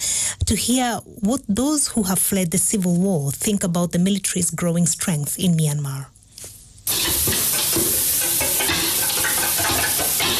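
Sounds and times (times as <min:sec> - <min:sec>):
speech: 0:00.5 - 0:06.2
fish eggs frying in an old house: 0:06.8 - 0:10.3.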